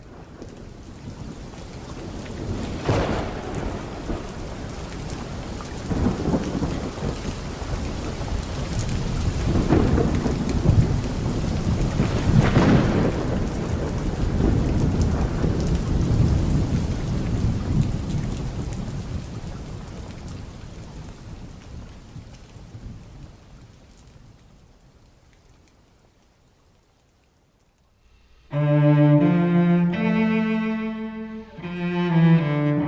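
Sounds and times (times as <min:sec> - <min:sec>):
heavy rain during a thunderstorm: 0:00.0 - 0:32.8
deep rolling rumbles of thunder: 0:02.4 - 0:07.1, 0:09.4 - 0:17.7.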